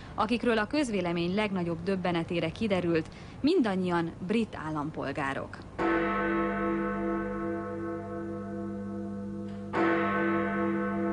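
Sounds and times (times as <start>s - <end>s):
speech: 0.2s - 6.0s
large memorial church bell tolling: 5.8s - 11.1s.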